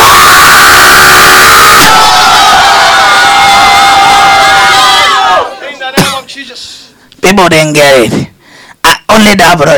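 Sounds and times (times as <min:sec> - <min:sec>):
large audience shouting loudly together: 0:00.0 - 0:05.8
speech: 0:07.5 - 0:08.3, 0:09.2 - 0:09.7.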